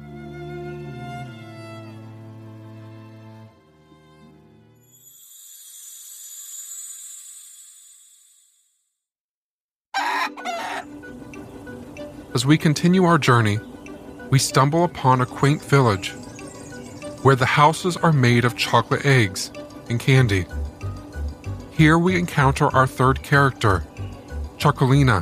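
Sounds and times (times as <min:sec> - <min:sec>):
chicken clucking and squawking: 0:10.0 - 0:11.1
speech: 0:12.4 - 0:13.7, 0:14.3 - 0:16.2, 0:17.2 - 0:20.6, 0:21.8 - 0:23.9, 0:24.6 - 0:25.2.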